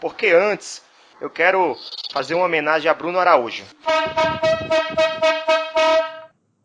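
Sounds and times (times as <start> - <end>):
speech: 0.0 - 6.0
horn toots: 3.8 - 6.3.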